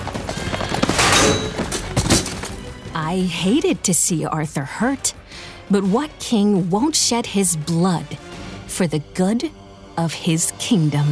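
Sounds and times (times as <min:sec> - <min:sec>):
horse hooves clattering: 0:00.0 - 0:02.9
heavy thuds and crashing tumble: 0:00.1 - 0:02.6
speech: 0:03.1 - 0:11.1.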